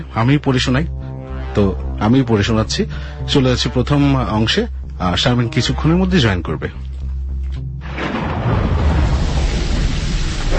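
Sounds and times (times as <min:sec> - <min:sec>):
speech: 0:00.0 - 0:01.0, 0:01.6 - 0:06.9
thunder with deep rolling rumble: 0:07.8 - 0:10.5
heavy torrential rain downpour: 0:08.0 - 0:10.5.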